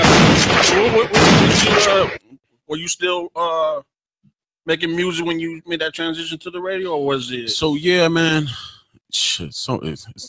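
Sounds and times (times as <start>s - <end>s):
gunshot sound effect: 0.0s - 2.2s
speech: 2.1s - 3.9s, 4.7s - 10.2s.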